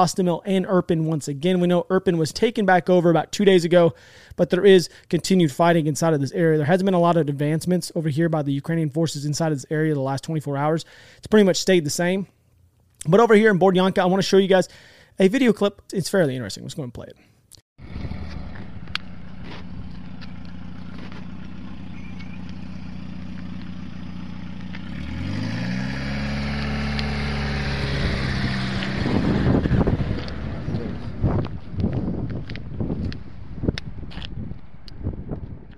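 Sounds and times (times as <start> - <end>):
speech: 0.0 - 12.4, 13.0 - 18.2
car engine pulling a trailer: 17.8 - 35.6
gusts of wind: 25.1 - 35.7.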